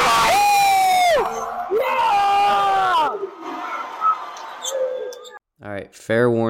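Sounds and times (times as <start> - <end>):
game commentators yelling excitedly after a corner three-point shot: 0.0 - 4.0
speech: 5.9 - 6.4.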